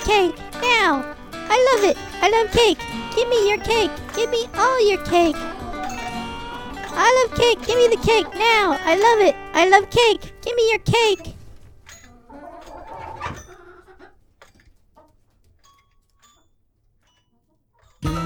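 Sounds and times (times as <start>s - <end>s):
chickens clucking: 0.0s - 18.1s
speech: 0.1s - 5.5s, 7.0s - 11.3s.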